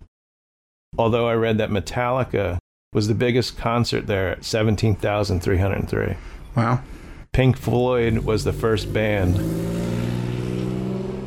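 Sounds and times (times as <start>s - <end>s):
speech: 1.0s - 9.8s
motorcycle engine droning passing outside open window: 7.8s - 11.2s.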